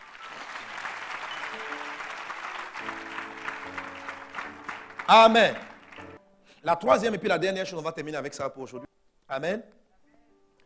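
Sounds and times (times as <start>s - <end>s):
church congregation applauding: 0.0s - 6.2s
speech: 5.1s - 5.7s, 6.6s - 9.8s.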